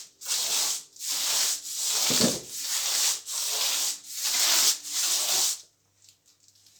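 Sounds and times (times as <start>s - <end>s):
brushes rubbing paper on snare drum: 0.3s - 5.6s.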